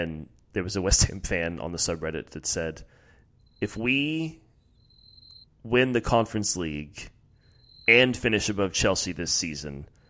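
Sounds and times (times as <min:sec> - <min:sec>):
speech: 0:00.0 - 0:03.0, 0:03.6 - 0:04.4, 0:05.6 - 0:07.2, 0:07.9 - 0:09.9
cricket chirping outside: 0:03.4 - 0:05.6, 0:07.4 - 0:08.2.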